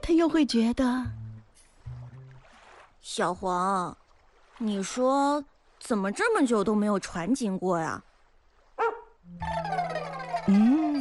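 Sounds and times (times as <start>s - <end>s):
speech: 0.1s - 1.2s, 3.0s - 4.0s, 4.6s - 8.1s, 8.8s - 9.8s, 10.5s - 11.0s
small dog barking: 8.8s - 9.2s
small dog giving high-pitched whining yelps: 8.8s - 10.5s.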